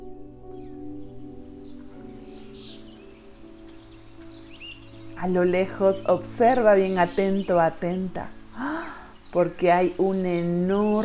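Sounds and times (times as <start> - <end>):
birds chirping in vegetation: 0.0 - 11.0
speech: 5.2 - 8.4, 9.3 - 11.0.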